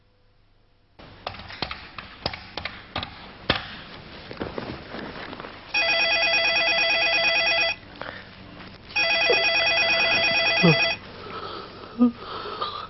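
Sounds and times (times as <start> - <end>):
irregular clicks and taps: 1.2 - 3.7
telephone ringing with a warbling electronic trill: 5.7 - 7.8, 9.0 - 11.0.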